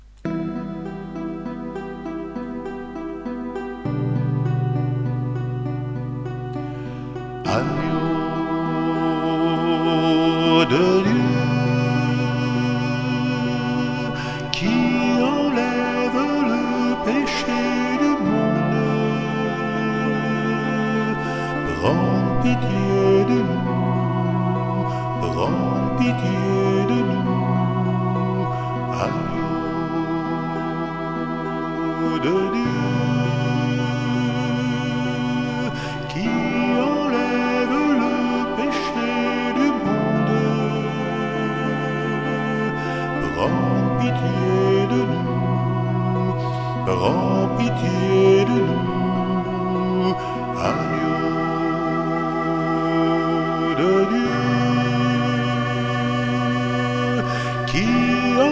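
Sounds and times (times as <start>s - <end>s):
solo chorale: 0.0s - 58.5s.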